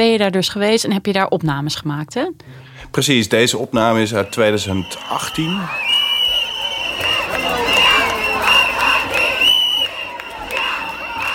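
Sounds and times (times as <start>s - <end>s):
speech: 0.0s - 5.9s
dense noisy crowd of women cheering at a women's march: 3.7s - 11.3s
women shouting at a women's march: 3.9s - 11.3s
higher-pitched calls from a crowd of women: 4.1s - 11.3s.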